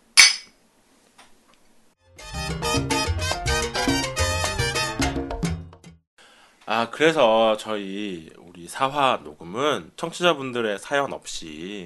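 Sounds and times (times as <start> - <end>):
drinking glasses clinking in a toast: 0.2 - 0.5
lively music: 2.1 - 6.0
speech: 6.8 - 11.8.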